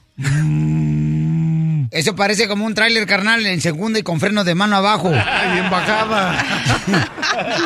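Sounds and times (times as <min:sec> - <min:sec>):
person imitating a cow mooing: 0:00.2 - 0:02.0
speech: 0:01.9 - 0:07.6
laughter: 0:05.0 - 0:07.6.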